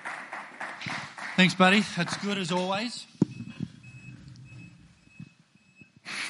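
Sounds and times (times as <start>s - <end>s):
speech: 1.4s - 3.1s
vehicle reversing alarm beeping: 2.9s - 6.2s.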